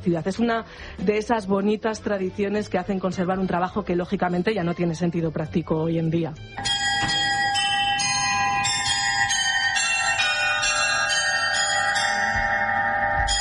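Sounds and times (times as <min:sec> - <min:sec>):
speech: 0:00.0 - 0:06.8
bells of a medieval astronomical clock inside Münster cathedral: 0:06.6 - 0:13.3.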